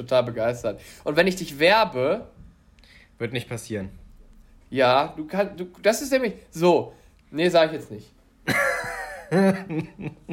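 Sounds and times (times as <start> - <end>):
speech: 0.0 - 2.4, 3.2 - 4.0, 4.7 - 8.7, 9.3 - 10.3
person coughing harshly: 8.5 - 9.7.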